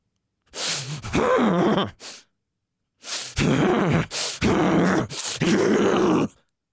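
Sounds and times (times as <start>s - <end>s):
person making forced deep strained huffing breaths: 0.5s - 2.3s, 3.0s - 5.5s.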